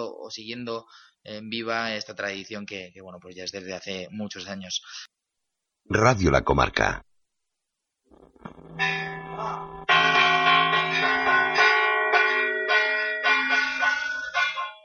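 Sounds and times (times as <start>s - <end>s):
speech: 0.0s - 5.2s, 5.9s - 7.1s, 8.1s - 11.4s
church bells pealing: 8.6s - 14.8s.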